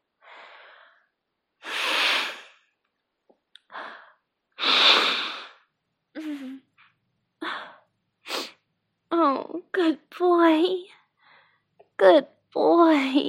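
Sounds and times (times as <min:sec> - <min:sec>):
person blowing nose into a handkerchief: 0:01.6 - 0:02.6, 0:04.6 - 0:05.6
speech: 0:09.8 - 0:10.9, 0:12.0 - 0:13.2.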